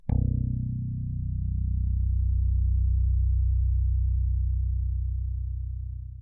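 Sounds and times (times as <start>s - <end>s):
bass picking a B note: 0.0s - 6.2s.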